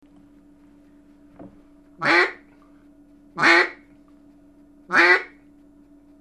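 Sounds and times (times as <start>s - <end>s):
faint constant hum: 0.0s - 6.1s
mallard duck giving harsh nasal quacks: 2.0s - 2.4s, 3.4s - 3.8s, 4.9s - 5.4s.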